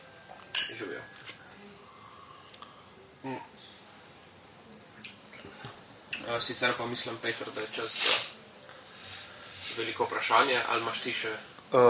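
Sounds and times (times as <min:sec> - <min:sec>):
faint low murmur: 0:00.0 - 0:10.2
glasses clinking during a toast: 0:00.5 - 0:00.9
speech: 0:03.2 - 0:03.5, 0:06.3 - 0:08.3, 0:09.8 - 0:11.8.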